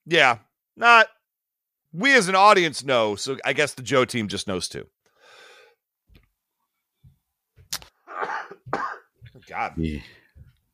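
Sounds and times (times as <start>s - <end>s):
speech: 0.1s - 1.2s, 1.9s - 5.0s, 9.5s - 10.2s
person in a rough throaty coughing fit: 8.1s - 9.1s.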